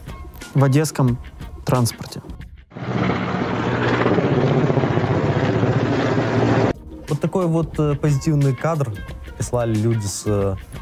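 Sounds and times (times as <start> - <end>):
speech: 0.5 - 2.4, 7.2 - 10.8
helicopter flying overhead with rotor and engine rumble: 2.8 - 6.7.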